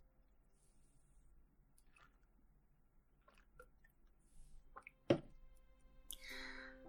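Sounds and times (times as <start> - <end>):
sipping and swallowing whisky without ice: 1.8 - 2.3, 3.2 - 4.0
breathy exhale: 6.1 - 6.8.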